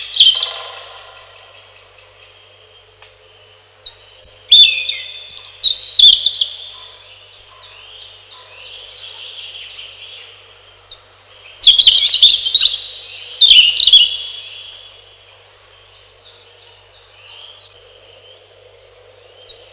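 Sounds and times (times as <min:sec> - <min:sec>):
European robin singing: 0:00.0 - 0:18.3
steady low hum: 0:00.0 - 0:19.7.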